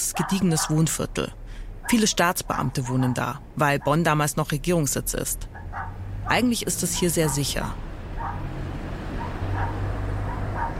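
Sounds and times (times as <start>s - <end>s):
dogs barking in a small ground-floor apartment in Bonn Germany: 0.0s - 1.0s, 1.8s - 4.2s, 5.5s - 10.7s
speech: 0.1s - 5.6s, 6.3s - 7.9s.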